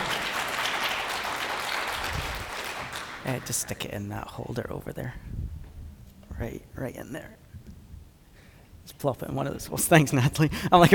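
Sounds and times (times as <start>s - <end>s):
audience applause of many hands clapping: 0.0s - 3.8s
speech: 3.2s - 5.4s, 6.4s - 7.4s, 8.9s - 10.9s.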